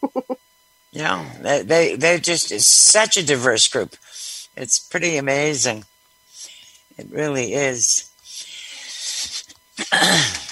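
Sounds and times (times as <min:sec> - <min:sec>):
speech: 0:01.0 - 0:05.9, 0:07.0 - 0:08.1
throaty cough: 0:09.8 - 0:10.5.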